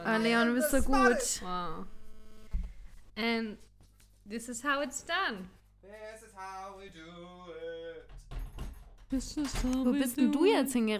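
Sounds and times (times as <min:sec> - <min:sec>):
speech: 0:00.2 - 0:02.0, 0:03.2 - 0:03.7, 0:04.3 - 0:08.2, 0:09.1 - 0:10.9
old apartment door shutting with rattling knocks and clunks: 0:08.0 - 0:09.7.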